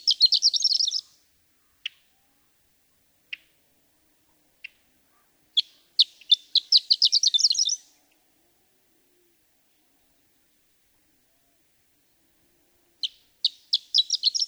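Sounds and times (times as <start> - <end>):
Horned lark singing: 0.0 - 1.1, 5.6 - 8.0, 13.0 - 14.4.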